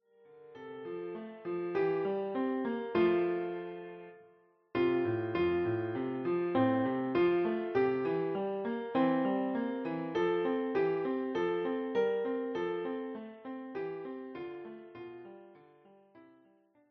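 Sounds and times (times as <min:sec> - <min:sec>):
Christmas carol played on piano: 0:00.0 - 0:16.6.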